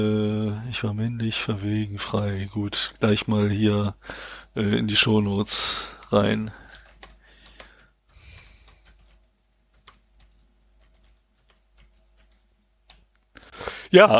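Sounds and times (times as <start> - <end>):
speech: 0.0 - 6.6, 13.9 - 14.1
typing on a computer keyboard: 6.5 - 8.0, 8.6 - 13.3.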